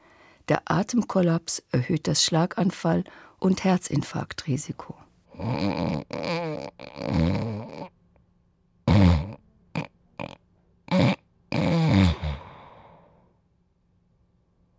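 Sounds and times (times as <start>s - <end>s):
speech: 0.5s - 7.5s
loud raspy snoring with grunting breaths: 5.3s - 7.9s, 8.9s - 13.0s.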